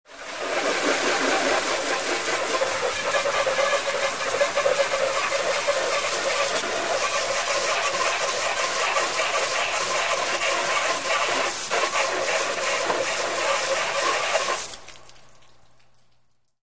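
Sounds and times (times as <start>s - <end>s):
hose spraying water on a metal car: 0.1s - 14.8s.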